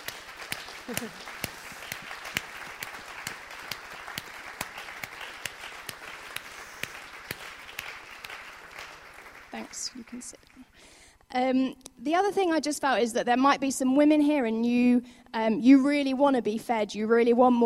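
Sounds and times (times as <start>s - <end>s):
audience applauding: 0.0s - 10.6s
speech: 0.9s - 1.4s, 9.6s - 17.6s.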